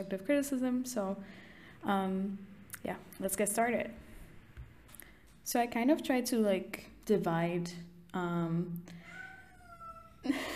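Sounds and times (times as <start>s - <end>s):
speech: 0.0s - 4.1s, 5.5s - 9.1s
pet cat meowing loudly: 9.0s - 10.2s.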